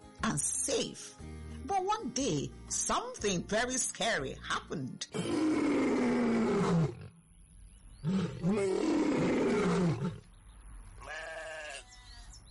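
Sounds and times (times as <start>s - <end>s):
speech: 0.4s - 5.9s, 8.4s - 9.0s
lion roaring: 5.2s - 7.1s, 8.0s - 10.2s.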